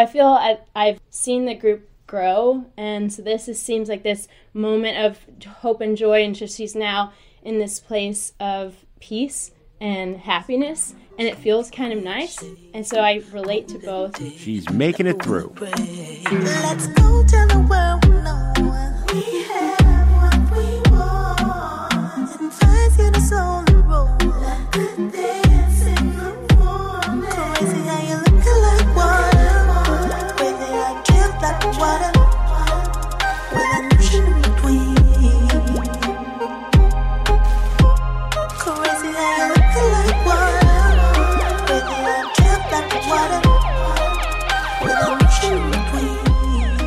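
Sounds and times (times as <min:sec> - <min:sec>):
speech: 0:00.0 - 0:18.4
smooth electronic R&B remix: 0:11.2 - 0:46.8.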